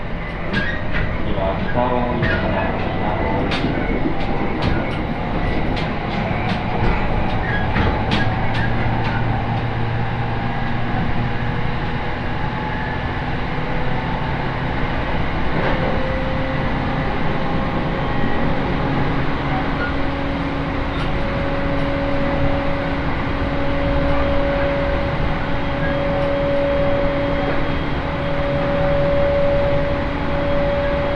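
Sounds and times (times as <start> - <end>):
rapid rail clicks: 0.0 - 12.4, 13.0 - 31.1
train running along the Ou Main Line: 0.0 - 31.1.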